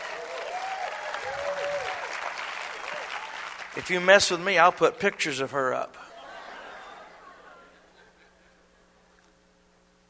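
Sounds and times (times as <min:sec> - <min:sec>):
audience applause: 0:00.0 - 0:04.7
brief whoop: 0:00.2 - 0:02.1
speech: 0:03.8 - 0:06.0
laughter: 0:06.0 - 0:08.6.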